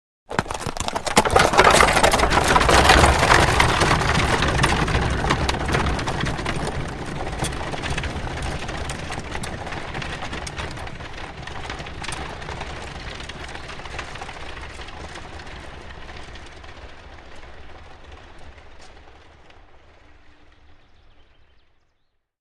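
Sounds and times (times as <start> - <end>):
horse-drawn carriage starting: 0.3 - 21.9.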